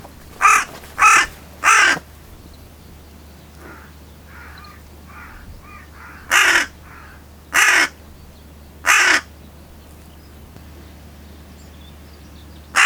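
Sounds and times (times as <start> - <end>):
Carrion crow cawing: 0.3 - 2.1, 3.6 - 8.0, 8.8 - 9.3.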